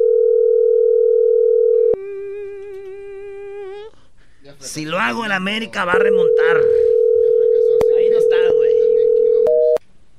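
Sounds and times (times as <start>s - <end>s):
telephone ringing tone while placing a call: 0.0s - 2.0s, 5.9s - 9.8s
speech: 4.6s - 6.8s.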